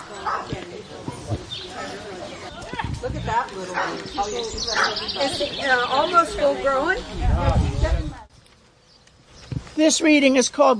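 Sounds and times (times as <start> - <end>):
animal sounds: 0.0 - 7.2
crowd chattering at a blessing of the animals: 0.0 - 8.4
dog barking at a blessing of the animals: 0.2 - 0.5, 3.7 - 4.1, 4.7 - 5.0
speech: 3.0 - 7.7, 9.8 - 10.7.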